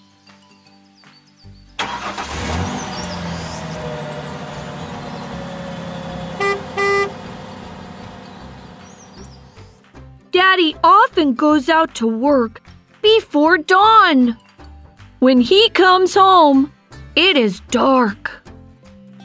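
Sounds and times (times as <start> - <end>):
large delivery truck engine rumbling as it drives by: 1.8 - 9.8
large delivery truck horn blasts: 3.8 - 8.8
speech: 10.5 - 14.4, 15.2 - 18.4.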